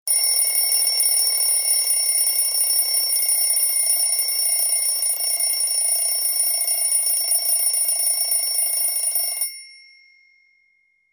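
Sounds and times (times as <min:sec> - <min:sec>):
mechanical alarm clock: 0:00.1 - 0:10.2.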